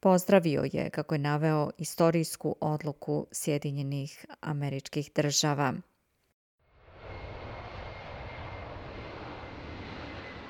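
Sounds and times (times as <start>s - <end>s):
speech: 0.0s - 5.9s
aircraft engine noise from planes landing: 6.7s - 10.4s.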